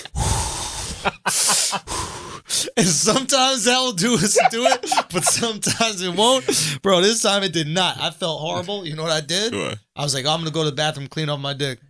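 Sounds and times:
voice imitating deep slow meditative breaths: 0:00.0 - 0:02.8
laughter: 0:01.0 - 0:01.9, 0:04.0 - 0:06.6
speech: 0:01.0 - 0:02.0, 0:02.7 - 0:11.8.

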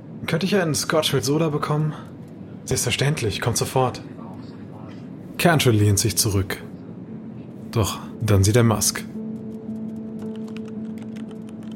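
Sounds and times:
steady low airplane cabin hum: 0:00.0 - 0:11.7
speech: 0:00.3 - 0:04.2, 0:05.4 - 0:06.7, 0:07.7 - 0:09.1
passenger typing on a laptop keyboard on an airplane flight: 0:09.3 - 0:11.7.

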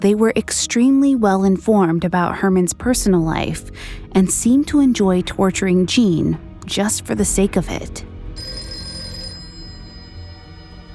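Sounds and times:
speech: 0:00.0 - 0:08.1
telephone bell ringing: 0:08.4 - 0:10.9.

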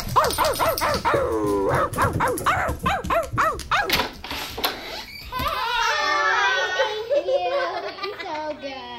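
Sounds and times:
dog barking at the front door: 0:00.1 - 0:04.0
laughter: 0:05.9 - 0:08.6.

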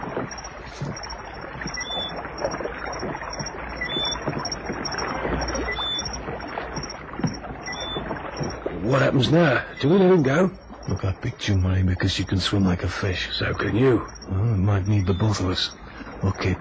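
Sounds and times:
rowboat oars splashing in water: 0:00.0 - 0:16.5
high chirping of insects or birds: 0:00.3 - 0:10.2, 0:13.1 - 0:16.1
speech: 0:08.9 - 0:16.5.

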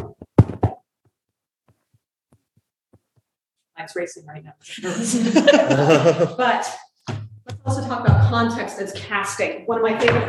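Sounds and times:
heartbeat sound effect made with a chamois cloth: 0:00.0 - 0:00.8, 0:07.1 - 0:08.5
speech: 0:03.8 - 0:06.9, 0:07.7 - 0:10.2
laughter: 0:04.7 - 0:06.6.

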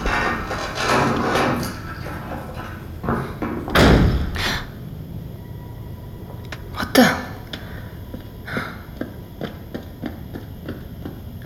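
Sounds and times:
door slamming shut: 0:00.0 - 0:07.9
clattering thumps: 0:00.0 - 0:08.4
quiet room noise: 0:00.0 - 0:11.2.

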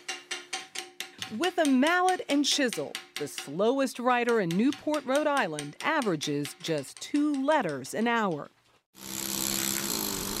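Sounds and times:
speech: 0:01.2 - 0:09.1
power tool grinding red slate: 0:09.0 - 0:10.3.

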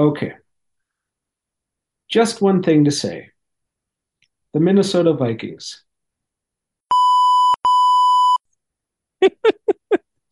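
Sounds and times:
speech: 0:00.0 - 0:00.4, 0:02.1 - 0:03.3, 0:04.5 - 0:05.9, 0:09.2 - 0:10.0
censor beeps from a beep button: 0:06.9 - 0:08.4.

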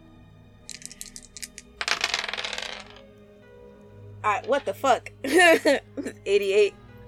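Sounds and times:
dice clattering and tumbling across a hard table: 0:00.7 - 0:03.1, 0:04.4 - 0:04.9
speech: 0:04.2 - 0:06.8
laughter: 0:05.2 - 0:06.1.

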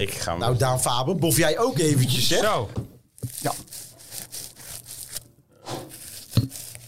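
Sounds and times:
speech: 0:00.0 - 0:02.8, 0:03.4 - 0:03.8
bread knife sawing through a crusty baked loaf: 0:03.5 - 0:06.8.

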